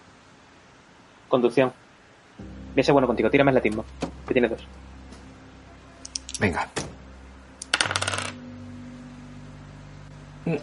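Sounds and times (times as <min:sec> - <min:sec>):
speech: 0:01.3 - 0:01.8, 0:02.4 - 0:05.0, 0:06.4 - 0:06.8
two dice rolled across a table for a game: 0:07.7 - 0:08.4.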